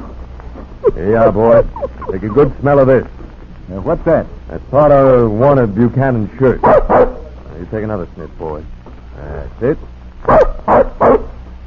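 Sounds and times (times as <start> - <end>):
speech: 0.9 - 11.3
young tracking dog puppy barking: 6.6 - 7.4, 10.2 - 11.4.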